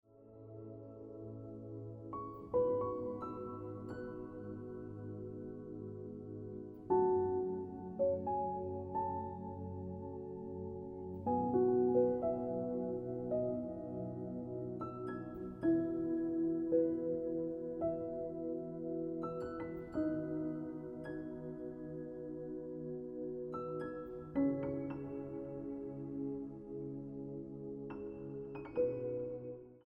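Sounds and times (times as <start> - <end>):
piano ringtone music: 2.1 - 29.7.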